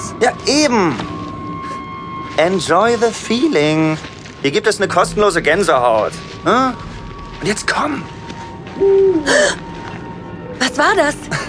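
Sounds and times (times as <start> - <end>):
speech: 0.2 - 1.1, 2.4 - 8.2, 8.8 - 9.6, 10.8 - 11.4
small owl hooting: 8.8 - 9.6.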